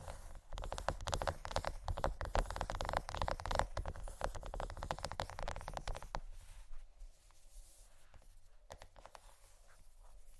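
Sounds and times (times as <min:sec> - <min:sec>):
fingernails scratching and tapping on chocolate: 0:00.0 - 0:06.2.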